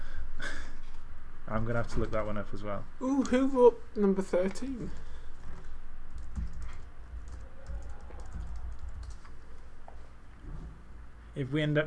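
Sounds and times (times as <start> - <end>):
low hum: 0.0 - 11.8
speech: 1.5 - 5.0, 11.4 - 11.8
laptop keyboard typing: 6.1 - 9.5.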